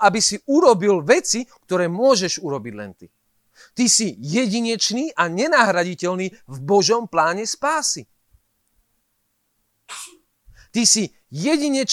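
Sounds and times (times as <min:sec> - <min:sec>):
speech: 0:00.0 - 0:08.1, 0:10.8 - 0:11.9
person sneezing: 0:09.9 - 0:10.3.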